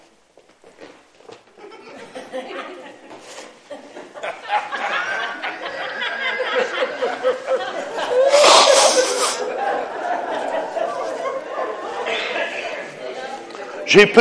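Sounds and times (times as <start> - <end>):
laughter: 1.6 - 13.8
murmuring voices and light chatter: 4.9 - 13.9
person sneezing: 8.3 - 9.5
speech: 13.9 - 14.2.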